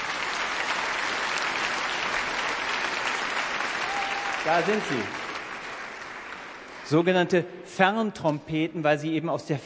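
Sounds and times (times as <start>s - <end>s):
audience applause: 0.0s - 7.2s
speech: 4.4s - 5.2s, 6.9s - 9.6s.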